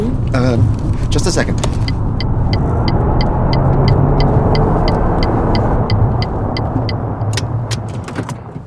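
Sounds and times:
car engine and road rumble inside the cabin: 0.0s - 8.6s
speech: 0.4s - 3.0s
car clunks: 1.6s - 2.0s, 6.6s - 8.6s
car turn signal ticking: 1.6s - 7.9s.

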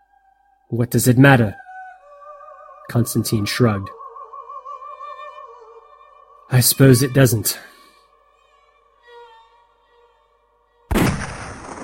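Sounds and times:
speech: 0.7s - 1.6s, 2.9s - 4.0s, 6.5s - 7.8s
rifle shot: 10.9s - 11.8s.

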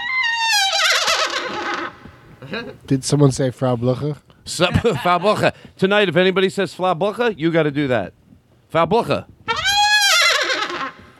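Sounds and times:
horse whinnying: 0.0s - 2.2s, 9.5s - 11.1s
speech: 2.5s - 9.4s
laughter: 4.7s - 5.5s.

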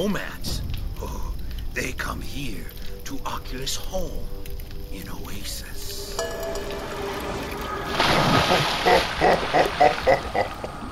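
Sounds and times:
speech: 0.0s - 0.5s, 1.8s - 7.0s, 7.9s - 10.7s
water sloshing and splashing from swimming strokes: 6.3s - 10.8s.

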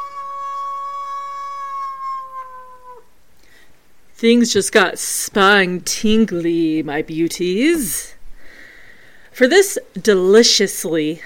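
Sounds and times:
long drawn-out howl: 0.0s - 3.2s
speech: 4.2s - 8.1s, 9.4s - 11.2s.

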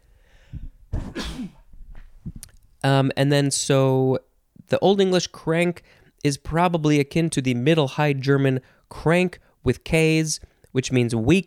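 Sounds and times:
quiet breathing: 0.0s - 0.9s, 5.8s - 6.2s
person sneezing: 0.9s - 1.7s
speech: 2.8s - 11.4s.

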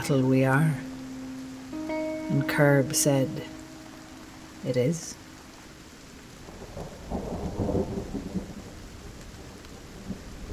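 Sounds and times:
speech: 0.0s - 0.9s, 2.3s - 3.6s, 4.6s - 5.2s
steady rainfall: 0.0s - 10.5s
low rolling thunder: 6.4s - 10.5s.

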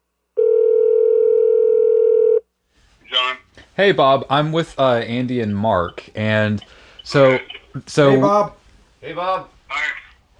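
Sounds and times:
phone ringing on speakerphone: 0.4s - 2.4s
speech: 3.8s - 10.0s.

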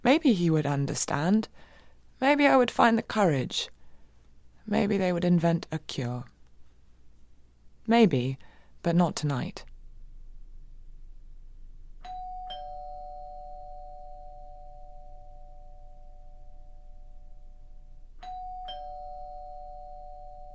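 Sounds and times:
speech: 0.2s - 3.8s, 4.7s - 6.3s, 7.9s - 9.7s
two-tone doorbell chime: 12.0s - 20.5s.

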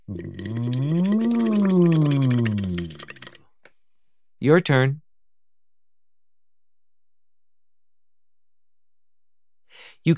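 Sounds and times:
person humming through a straw into a bottle or glass of water: 0.0s - 3.4s
water bubbling in a small bottle or tall glass: 0.0s - 3.5s
speech: 4.4s - 5.0s.

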